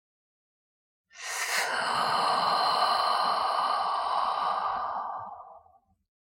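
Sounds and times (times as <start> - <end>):
long audible exhale during a guided breathing exercise: 1.1 - 5.9.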